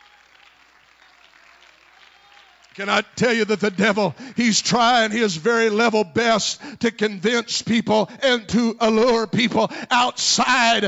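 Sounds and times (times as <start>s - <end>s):
audience clapping hands: 0.0s - 5.2s
speech: 2.8s - 10.8s.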